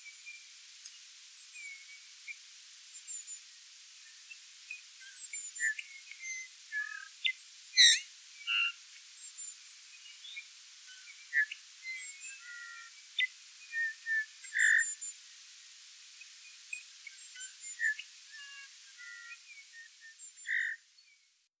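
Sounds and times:
thin high chirps and short whistles: 1.4 - 3.4, 4.0 - 15.2, 16.4 - 21.2
Eurasian bullfinch Pyrrhula pyrrhula giving soft low piping notes: 5.6 - 8.8, 11.3 - 14.9, 20.4 - 20.8.

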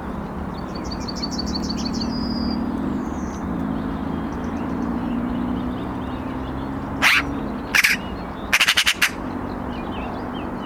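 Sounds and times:
other birds twittering song: 0.0 - 10.6
Eurasian magpie calling harshly: 7.0 - 9.3.

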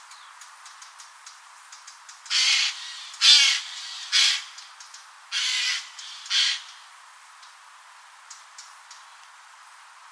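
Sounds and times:
Eurasian jay giving harsh rasping screeches: 2.3 - 4.5, 5.3 - 6.8.

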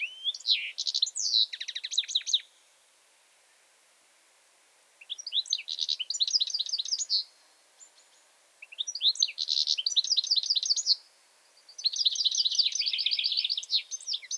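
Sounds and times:
European goldfinch Carduelis carduelis singing: 0.0 - 2.6, 5.0 - 14.3.

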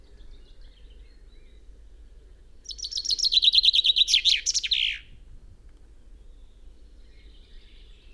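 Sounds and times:
common chaffinch Fringilla coelebs singing: 2.6 - 5.0.

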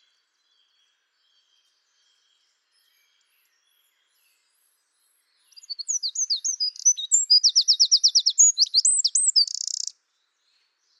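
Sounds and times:
Eurasian wren Troglodytes troglodytes singing: 5.5 - 9.9.

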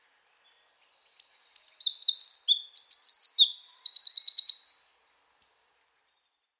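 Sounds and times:
Eurasian wren Troglodytes troglodytes singing: 0.6 - 4.8.

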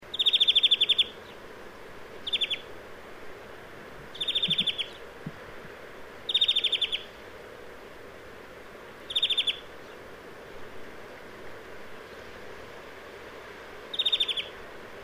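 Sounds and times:
low background hiss: 0.0 - 15.0
European greenfinch Chloris chloris ticking rattle calls: 2.2 - 2.6, 4.1 - 5.0, 6.3 - 7.0, 9.1 - 9.6.

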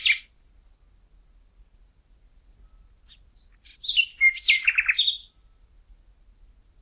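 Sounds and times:
common nightingale Luscinia megarhynchos singing: 0.0 - 0.3, 2.3 - 6.8.

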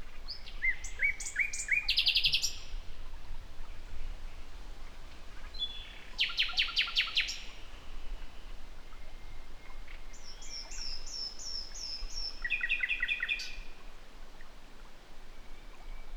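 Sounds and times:
common nightingale Luscinia megarhynchos song: 0.3 - 2.8, 5.4 - 8.2, 8.9 - 13.7.

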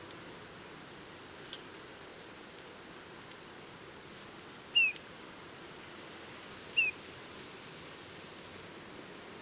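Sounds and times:
hissing background: 0.0 - 9.4
Eurasian bullfinch Pyrrhula pyrrhula plaintive descending piping notes: 4.7 - 5.0, 6.7 - 7.0.

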